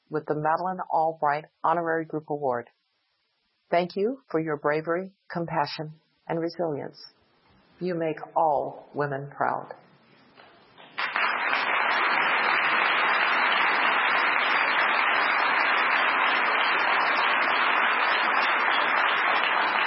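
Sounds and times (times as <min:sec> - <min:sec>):
speech: 0:00.1 - 0:02.8, 0:03.7 - 0:07.2, 0:07.8 - 0:09.8
large crowd applause: 0:11.0 - 0:19.8.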